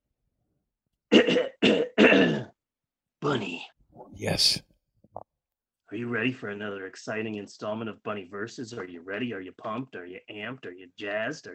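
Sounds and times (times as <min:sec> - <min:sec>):
person clearing throat: 0:01.1 - 0:02.5
speech: 0:04.3 - 0:04.6, 0:06.1 - 0:11.5.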